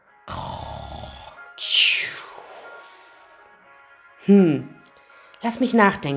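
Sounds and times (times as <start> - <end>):
person snoring while asleep: 0.2 - 3.3
speech: 4.3 - 4.8, 5.4 - 6.1.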